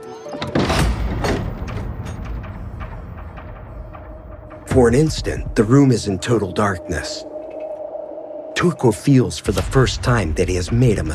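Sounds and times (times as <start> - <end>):
room door creaking open with a low rumbling thud: 0.1 - 3.0
speech: 4.8 - 7.3, 8.6 - 11.1.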